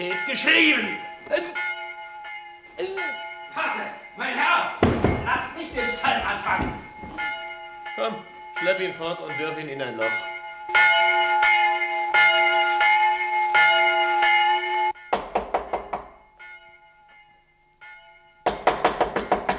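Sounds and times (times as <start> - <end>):
speech: 0.0 - 1.5, 2.8 - 7.3, 8.0 - 11.6
church bell ringing: 0.0 - 19.5
knocking on a door: 4.8 - 7.0, 15.1 - 16.1, 18.5 - 19.5.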